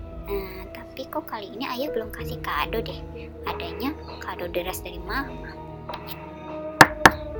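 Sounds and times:
speech: 1.0s - 6.3s
knocking on a bedroom door: 6.8s - 7.3s.

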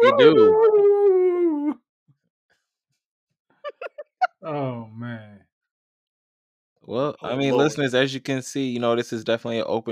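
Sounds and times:
laughter: 0.0s - 0.5s
speech: 0.0s - 0.9s, 6.9s - 9.8s
person howling like a wolf: 0.0s - 1.8s.

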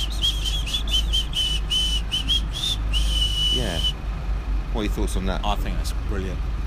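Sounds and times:
breathy semi-whistle blown through the teeth: 0.0s - 4.0s
speech: 4.8s - 6.6s.

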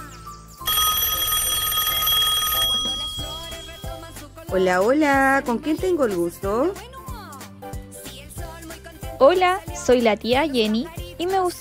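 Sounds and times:
telephone ringing: 0.6s - 4.3s
speech: 4.5s - 6.9s, 9.2s - 11.5s.

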